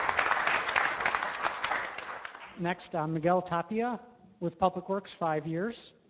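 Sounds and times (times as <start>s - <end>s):
audience applause at an employee service recognition during a public meeting: 0.0s - 2.6s
speech: 2.6s - 6.0s.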